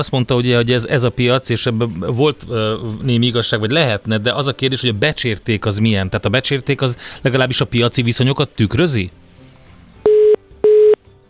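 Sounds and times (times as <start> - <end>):
speech: 0.0 - 9.2
electronic telephone dialing tones as a call back is placed: 10.1 - 11.0.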